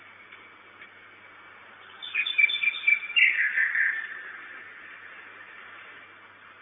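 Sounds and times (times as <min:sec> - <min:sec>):
Common nightingale song at a nest box: 0:01.6 - 0:06.0.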